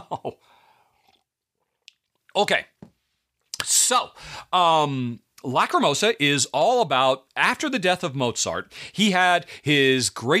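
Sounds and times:
sipping warm honey water: 0.5 - 2.4
speech: 2.4 - 2.7, 3.9 - 10.3.

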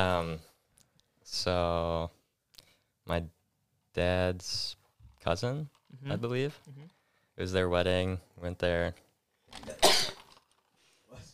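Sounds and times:
speech: 0.0 - 0.5, 1.3 - 2.2, 3.1 - 3.4, 4.0 - 10.0
sneeze: 9.7 - 10.2.

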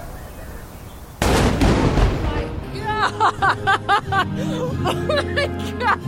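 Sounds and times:
ship's cannon firing a morning salute: 1.2 - 3.0
laughter: 2.7 - 6.0
speech: 3.2 - 6.0.

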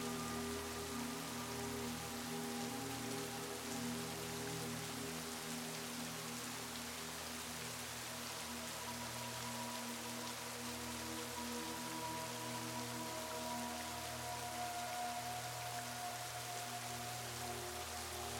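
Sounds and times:
gentle rain shower: 0.0 - 18.3
soft relaxing music: 0.0 - 18.3.

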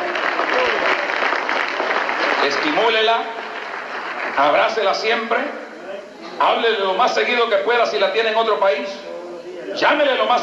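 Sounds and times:
audience applauding steadily: 0.0 - 5.0
speech: 2.4 - 3.4, 4.4 - 5.6, 6.4 - 9.1, 9.8 - 10.4.

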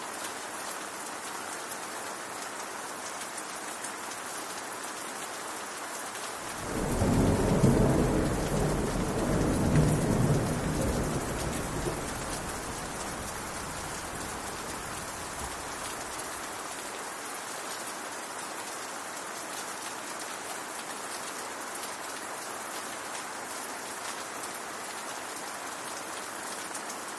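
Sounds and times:
steady rain on hard surfaces: 0.0 - 27.1
deep roll of thunder: 6.6 - 15.9.

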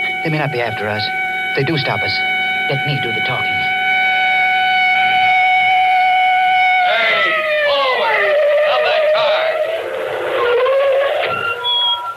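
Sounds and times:
police car siren: 0.0 - 12.1
speech: 0.2 - 3.8.

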